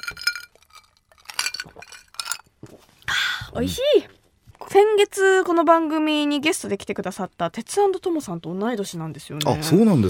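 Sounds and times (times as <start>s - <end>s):
glasses clinking in a toast: 0.0s - 2.5s
speech: 3.6s - 10.0s.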